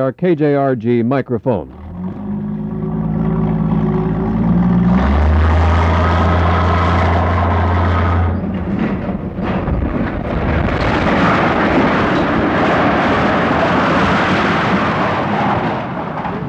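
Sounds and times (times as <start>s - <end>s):
speech: 0.0s - 1.8s
low tonal hum: 1.6s - 15.2s
church steeple of an old courthouse building crashing to the ground: 8.6s - 16.4s.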